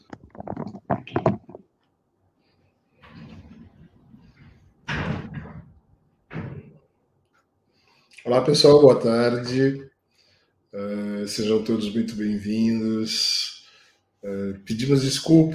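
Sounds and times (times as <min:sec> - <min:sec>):
glass door slid and pushed shut with rattling scraping and thudding: 0:03.0 - 0:05.7
speech: 0:08.3 - 0:09.9, 0:11.3 - 0:13.5, 0:14.2 - 0:15.5.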